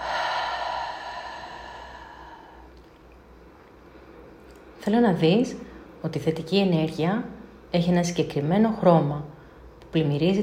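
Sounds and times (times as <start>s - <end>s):
slow deep breathing in and out: 0.0s - 3.0s
speech: 4.8s - 10.4s.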